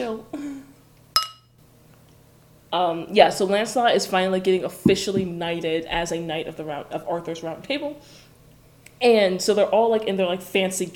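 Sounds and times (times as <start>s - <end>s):
speech: 0.0s - 0.4s, 2.7s - 8.2s, 9.0s - 10.9s
glasses clinking in a toast: 1.2s - 1.5s.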